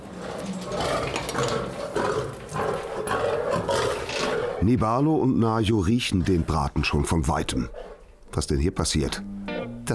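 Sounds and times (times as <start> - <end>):
lion roaring and growling: 0.0 - 4.8
speech: 4.6 - 9.9.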